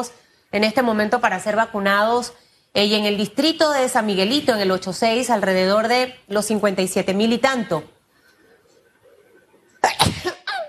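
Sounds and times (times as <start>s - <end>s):
speech: 0.0s - 8.0s
single sharp explosive sneeze: 9.8s - 10.6s.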